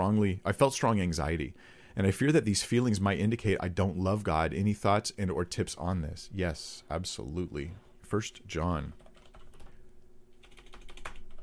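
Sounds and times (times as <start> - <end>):
low steady hum: 0.0 - 11.4
speech: 0.1 - 9.0
typing on a computer keyboard: 9.0 - 9.7, 10.4 - 11.4.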